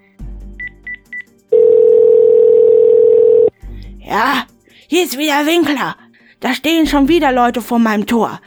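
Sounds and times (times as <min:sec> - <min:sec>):
steady loud continuous phone tone: 0:00.6 - 0:03.6
quick beeping dial tones: 0:00.9 - 0:03.5
speech: 0:04.1 - 0:08.4.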